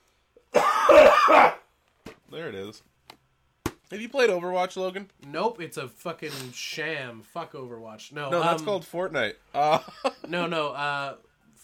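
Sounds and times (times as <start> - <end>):
cough into a microphone: 0.5 - 1.7
speech: 2.4 - 3.0, 3.9 - 11.3.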